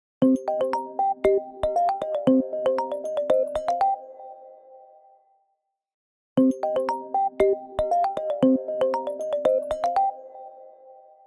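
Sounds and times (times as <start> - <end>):
pop ringtone: 0.2 - 4.1, 6.4 - 10.3.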